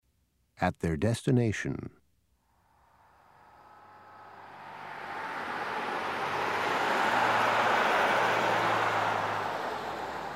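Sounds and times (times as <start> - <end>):
speech: 0.6 - 2.0
bus engine and road noise passing: 2.4 - 10.3
low steady drone: 2.5 - 8.0.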